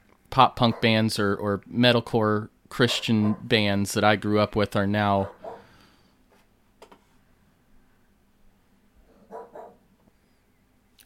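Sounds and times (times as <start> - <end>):
low hum: 0.0 - 11.0
speech: 0.4 - 5.4
dog barking: 0.6 - 1.0, 2.9 - 3.5, 5.2 - 5.7, 9.1 - 9.8.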